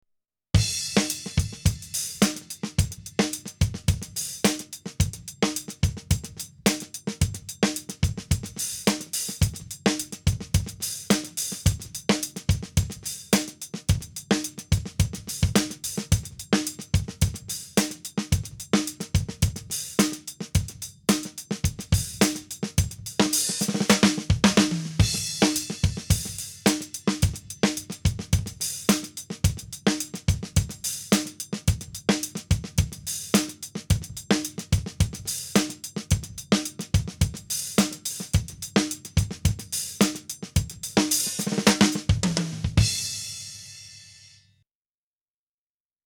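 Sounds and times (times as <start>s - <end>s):
studio drum kit without compression: 0.6s - 44.4s.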